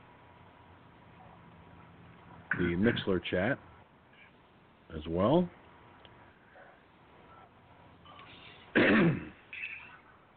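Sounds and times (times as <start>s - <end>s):
speech: 2.6s - 3.7s, 4.9s - 5.6s
throat clearing caused by a tickle in the throat: 8.7s - 9.9s.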